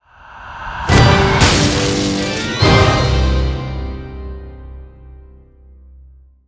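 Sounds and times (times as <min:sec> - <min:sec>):
chandelier falling: 0:01.3 - 0:03.3.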